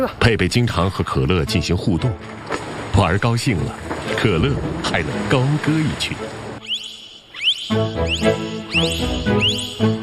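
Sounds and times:
speech: 0:00.0 - 0:06.4, 0:07.7 - 0:10.0
dolphin giving high squeaky whistles: 0:06.6 - 0:10.0.

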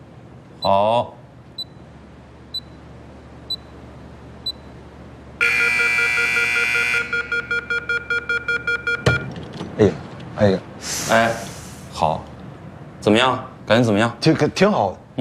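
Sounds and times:
speech: 0:00.6 - 0:01.2, 0:09.8 - 0:12.3, 0:13.0 - 0:15.1
electronic timer beeping after a door is locked: 0:02.5 - 0:02.8, 0:04.4 - 0:04.7, 0:05.4 - 0:09.3
steady buzzing tone: 0:05.4 - 0:09.3.

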